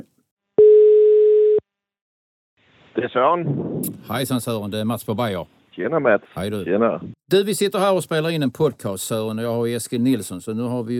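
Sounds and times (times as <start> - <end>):
telephone ringback tone while calling: 0.6 - 1.6
speech: 3.0 - 10.9.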